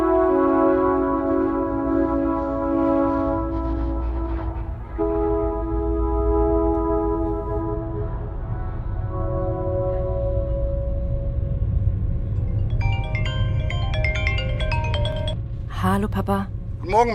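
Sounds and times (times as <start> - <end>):
ICE high-speed train low rolling rumble: 0.2 - 17.1
higher ringing tones: 9.2 - 15.7
speech: 16.0 - 17.1.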